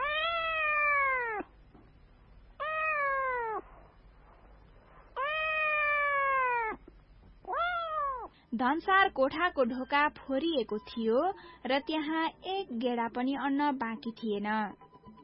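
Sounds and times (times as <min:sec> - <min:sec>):
cat meowing: 0:00.0 - 0:01.5, 0:02.6 - 0:03.7, 0:05.2 - 0:08.3
speech: 0:08.6 - 0:14.8.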